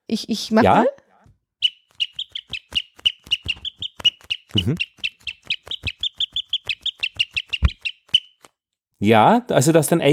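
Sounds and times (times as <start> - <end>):
speech: 0.1 - 1.0, 4.6 - 4.9, 9.0 - 10.1
leather pouch bird lure whistle giving sparrow chirps: 1.6 - 8.4.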